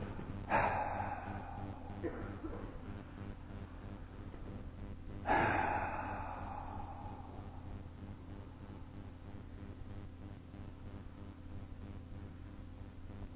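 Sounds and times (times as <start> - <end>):
quiet breathing: 0.0 - 12.4
deep breathy exhales: 0.5 - 2.6, 5.3 - 7.8.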